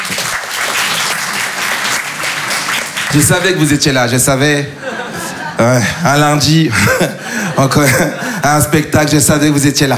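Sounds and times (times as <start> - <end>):
audience applauding at a live comedy show: 0.0 - 3.7
speech: 3.1 - 4.9, 5.6 - 9.9
laughter: 4.7 - 6.1, 6.7 - 8.8.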